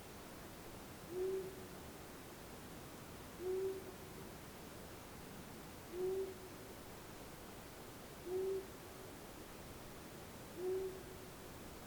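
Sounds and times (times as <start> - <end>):
long-eared owl Asio otus hooting: 1.1 - 1.6, 3.4 - 3.9, 5.9 - 6.4, 8.2 - 8.7, 10.6 - 11.2.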